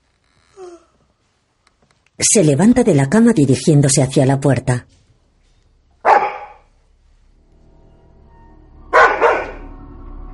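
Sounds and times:
low steady hum: 0.0s - 10.3s
speech: 2.2s - 5.0s
dog barking toward a bed in a bedroom: 6.0s - 6.7s, 8.9s - 9.6s.

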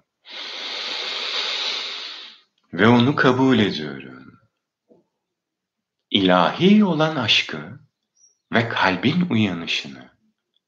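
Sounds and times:
long inhale through the nose: 0.2s - 2.4s
speech: 2.7s - 4.4s, 6.2s - 7.8s, 8.5s - 10.2s.

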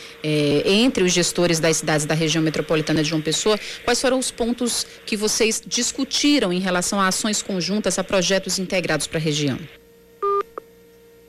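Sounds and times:
speech: 0.2s - 9.8s
electronic telephone beep after a phone call drops: 10.2s - 10.6s.

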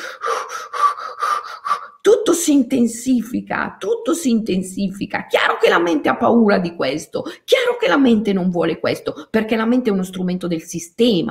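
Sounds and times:
forceful heavy breathing performed as a demonstration: 0.0s - 2.0s
speech: 2.3s - 11.2s.

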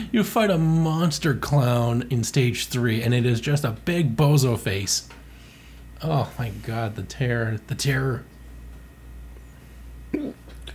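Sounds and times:
speech: 0.0s - 5.2s, 6.0s - 8.3s
faint steady hum: 0.0s - 10.7s
hiccup: 10.1s - 10.7s.

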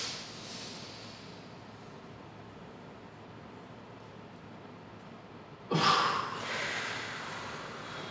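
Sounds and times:
deep cleansing breath during a yoga exercise: 0.0s - 1.4s, 5.7s - 8.1s.

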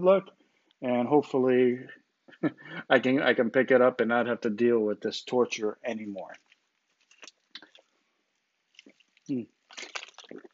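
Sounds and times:
speech: 0.0s - 6.5s, 9.3s - 10.5s
person sipping a drink with wet mouth sounds: 7.0s - 7.9s, 8.8s - 10.5s.

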